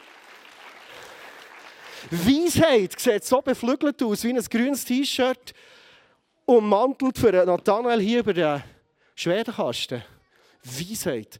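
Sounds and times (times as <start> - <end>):
audience applause: 0.0 - 2.6
speech: 2.0 - 5.8, 6.5 - 11.3.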